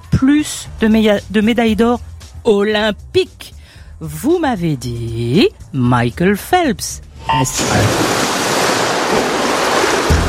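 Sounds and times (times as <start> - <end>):
speech: 0.2 - 8.1
water rushing and splashing as it overflows: 7.0 - 10.2.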